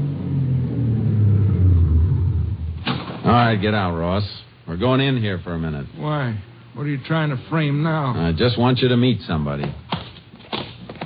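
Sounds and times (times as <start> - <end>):
car driving through town, low engine rumble: 0.0 - 3.2
speech: 3.3 - 9.9.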